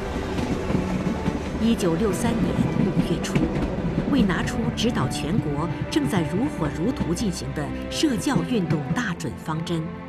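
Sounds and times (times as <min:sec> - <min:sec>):
train wheels clacking on rails: 0:00.0 - 0:09.1
speech: 0:01.6 - 0:10.0.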